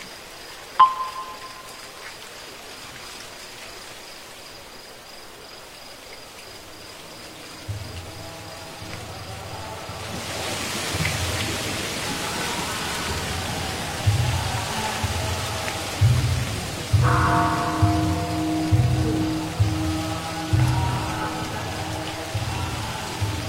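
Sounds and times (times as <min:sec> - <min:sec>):
high insect trill at night: 0:00.0 - 0:23.4
temple bell struck: 0:00.8 - 0:01.8, 0:17.0 - 0:20.2
low chanting voices: 0:07.4 - 0:23.4.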